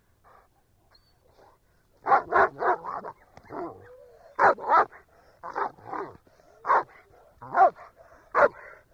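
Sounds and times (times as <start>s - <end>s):
German Shepherd dog barking: 2.0s - 3.8s, 4.4s - 8.8s.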